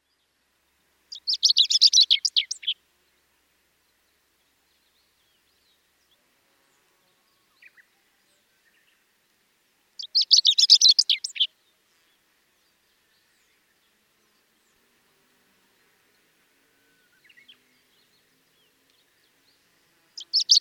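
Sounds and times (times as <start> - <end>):
chestnut-eared bunting calling: 1.2 - 2.8, 10.0 - 11.5, 20.2 - 20.5.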